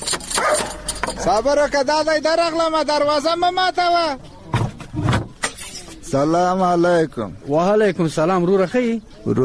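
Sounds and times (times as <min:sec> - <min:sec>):
fierce dog barking at a house: 0:00.3 - 0:00.9
speech: 0:01.3 - 0:04.3, 0:06.1 - 0:09.4.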